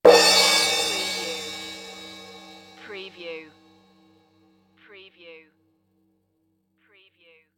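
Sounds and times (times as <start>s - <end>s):
cartoon drum and cymbal crash: 0.0s - 3.4s.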